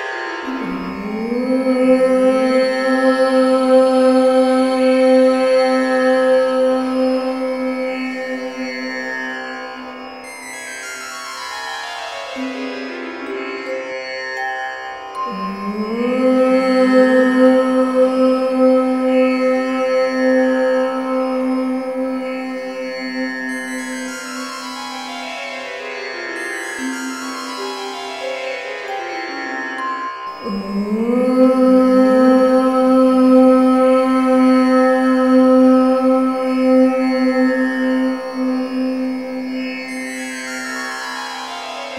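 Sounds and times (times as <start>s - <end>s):
woman chanting om: 0.6s - 10.2s, 15.2s - 25.3s, 30.4s - 41.6s.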